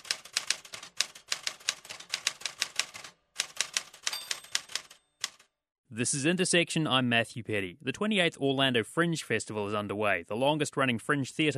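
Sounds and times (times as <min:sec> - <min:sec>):
typewriter keys clacking: 0:00.0 - 0:05.4
speech: 0:06.0 - 0:11.5.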